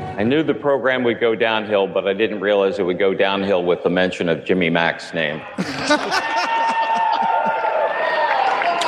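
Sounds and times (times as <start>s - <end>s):
speech: 0.2s - 6.5s
scattered laughter of a live audience at a fan convention: 5.6s - 7.7s
live audience at a fan convention cheering: 5.6s - 8.8s.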